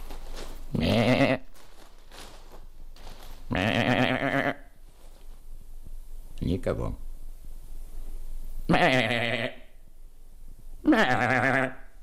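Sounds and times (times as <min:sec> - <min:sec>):
person imitating a young goat bleating: 0:00.7 - 0:01.5, 0:03.5 - 0:04.7, 0:08.7 - 0:09.7, 0:10.8 - 0:11.9
speech: 0:06.6 - 0:07.1.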